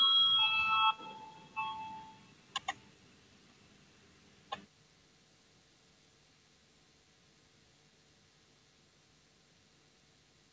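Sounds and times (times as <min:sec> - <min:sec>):
parliament voting bell ringing electronically: 0:00.0 - 0:02.2
sharp clicks: 0:02.5 - 0:02.8.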